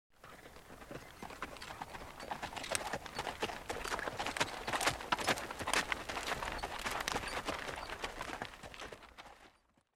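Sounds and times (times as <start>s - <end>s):
horse passing by: 0.2s - 9.9s.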